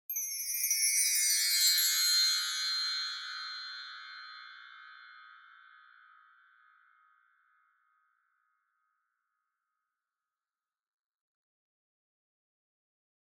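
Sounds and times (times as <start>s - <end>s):
wind chimes with reverb: 0.1s - 7.1s.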